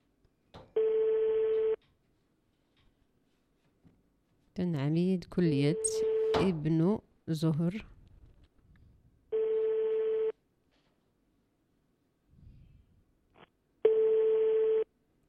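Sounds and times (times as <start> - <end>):
telephone ringback tone on a call: 0.8 - 1.8, 9.3 - 10.3, 13.9 - 14.9
speech: 4.6 - 7.9.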